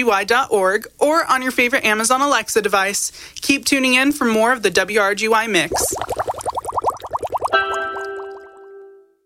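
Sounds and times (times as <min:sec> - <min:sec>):
speech: 0:00.0 - 0:06.4
water bubbling and gurgling: 0:05.6 - 0:08.6.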